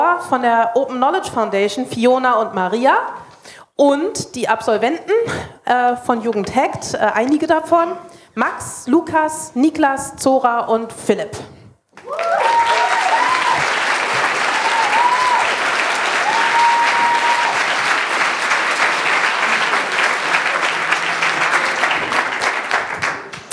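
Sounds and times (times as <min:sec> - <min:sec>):
speech: 0:00.2 - 0:12.5
faint whistles or cheers: 0:12.0 - 0:17.9
sizeable audience applauding for a talk: 0:12.0 - 0:23.5.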